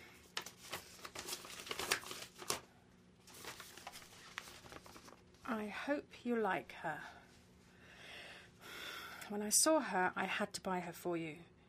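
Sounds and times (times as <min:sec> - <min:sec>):
bubble wrap crinkling while unwrapping a gift: 0:00.2 - 0:05.4
speech: 0:05.5 - 0:07.2, 0:09.3 - 0:11.5.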